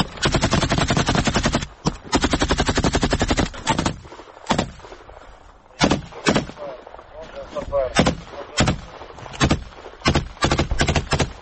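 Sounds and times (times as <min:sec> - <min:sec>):
automatic machine gun firing on a treeline: 0:00.2 - 0:04.8, 0:05.8 - 0:06.6, 0:08.0 - 0:11.4
sharp single gunshots: 0:03.5 - 0:04.8, 0:05.8 - 0:06.8, 0:07.9 - 0:11.3.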